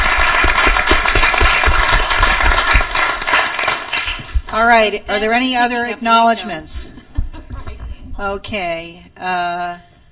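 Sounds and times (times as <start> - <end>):
audience applauding: 0.0 - 4.6
speech: 4.6 - 6.9, 8.2 - 9.9.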